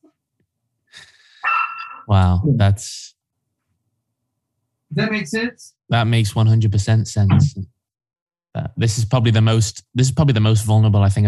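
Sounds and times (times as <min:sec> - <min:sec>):
dog giving a drawn-out high-pitched bark: 0:01.4 - 0:02.1
speech: 0:02.1 - 0:03.0, 0:05.0 - 0:07.8, 0:08.6 - 0:11.2.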